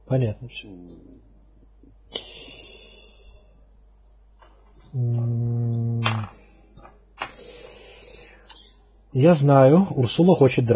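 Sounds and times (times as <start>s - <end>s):
speech: 0.1s - 1.3s, 4.9s - 5.4s, 9.1s - 10.7s
man yawning: 5.0s - 6.3s.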